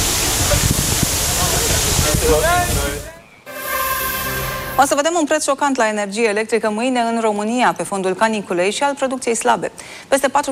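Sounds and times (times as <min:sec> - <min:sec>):
water cannon spraying water: 0:00.0 - 0:04.8
speech: 0:02.3 - 0:02.7, 0:04.8 - 0:10.4.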